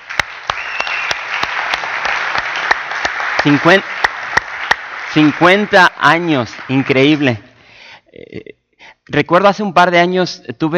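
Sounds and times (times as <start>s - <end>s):
audience applause: 0.0s - 7.5s
speech: 3.4s - 4.0s, 5.2s - 7.5s, 8.2s - 10.7s.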